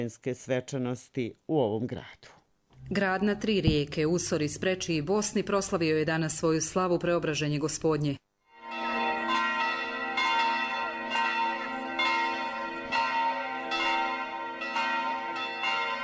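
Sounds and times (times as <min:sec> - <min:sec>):
speech: 0:00.0 - 0:08.2
bells of a Serbian Orthodox church pealing on the feast of the Transfiguration: 0:08.6 - 0:16.0.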